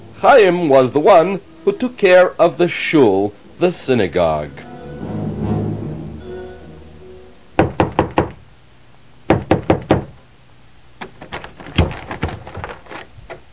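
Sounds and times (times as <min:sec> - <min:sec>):
speech: 0:00.2 - 0:04.7
brief musical tone: 0:03.4 - 0:07.6
firm knocking on a wooden door: 0:07.6 - 0:08.4, 0:09.3 - 0:10.2.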